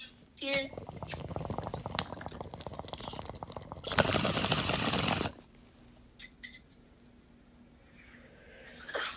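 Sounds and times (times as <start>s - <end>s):
bong water bubbling during a bong hit: 0.6s - 5.4s.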